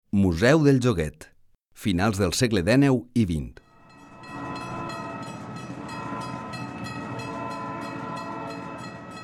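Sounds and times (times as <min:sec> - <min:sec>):
speech: 0:00.1 - 0:03.6
train rumbling past with rhythmic clatter of wheels: 0:03.8 - 0:09.2.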